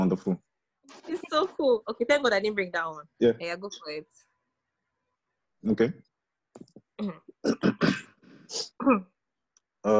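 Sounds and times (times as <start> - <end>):
speech: 0.0 - 4.3, 5.6 - 9.1
person clearing throat: 7.0 - 9.1.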